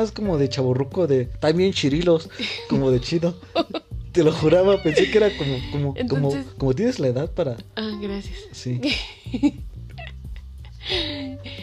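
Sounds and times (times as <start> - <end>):
speech: 0.0 - 9.7
steady hiss: 0.0 - 11.6
laughter: 3.5 - 6.5
cat giving short whining meows: 4.4 - 5.9.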